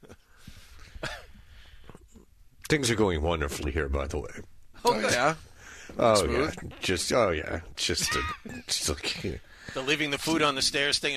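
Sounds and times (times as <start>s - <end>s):
person coughing: 1.0s - 1.4s
speech: 2.7s - 11.1s.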